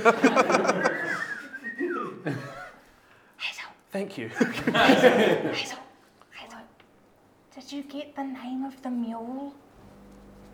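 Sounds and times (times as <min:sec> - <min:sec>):
speech: 0:00.0 - 0:00.6, 0:03.9 - 0:05.8, 0:07.6 - 0:09.6
laughter: 0:00.0 - 0:02.8, 0:04.3 - 0:05.8
person whistling a wavering tone: 0:01.0 - 0:02.2.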